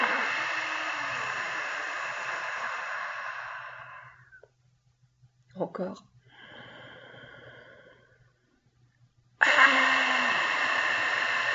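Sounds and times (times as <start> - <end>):
slow exhale during a guided breathing exercise: 0.0 - 4.5, 6.3 - 8.4, 9.4 - 11.5
speech: 5.6 - 6.2.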